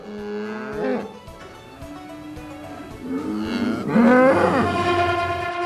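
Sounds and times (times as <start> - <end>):
several cattle mooing: 0.0 - 1.2, 2.2 - 5.5.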